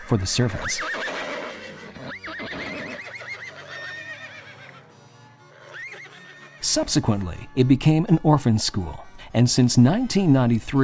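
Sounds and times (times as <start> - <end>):
speech: 0.1 - 1.1, 6.8 - 10.8
horse neighing: 0.5 - 4.9, 5.5 - 6.7.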